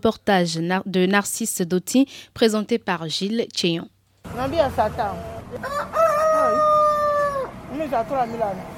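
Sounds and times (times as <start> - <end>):
speech: 0.0 - 6.7, 7.8 - 8.7
rooster crowing at a chicken sales stall in Akobato, Cotonou: 5.2 - 7.7
chickens and fowl clucking and squawking at a chicken sales stall: 5.6 - 7.6.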